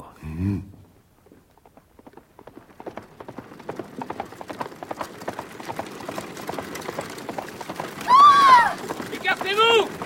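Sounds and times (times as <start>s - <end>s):
speech: 0.4s - 0.7s
galloping horses pulling a carriage: 0.5s - 10.0s
rattling carriage wheels: 0.9s - 10.0s.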